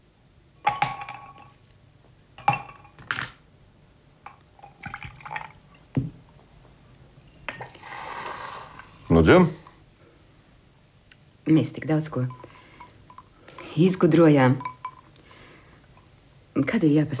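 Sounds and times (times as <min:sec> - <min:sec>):
faint pouring and liquid sounds of a drink being mixed: 0:00.6 - 0:01.6, 0:04.3 - 0:05.8
ice cubes clinking against a glass: 0:00.6 - 0:01.6, 0:02.4 - 0:03.4, 0:04.3 - 0:05.6
speech: 0:09.2 - 0:09.6, 0:11.5 - 0:12.4, 0:13.8 - 0:14.7, 0:16.7 - 0:17.1.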